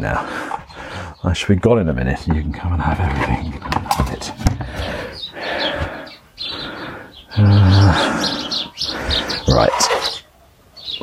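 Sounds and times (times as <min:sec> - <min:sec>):
speech: 0:00.0 - 0:00.4, 0:01.2 - 0:05.1, 0:07.4 - 0:10.1
busy rustling outdoor background: 0:00.0 - 0:11.0
sparrows chirping at a bird feeder: 0:00.0 - 0:11.0.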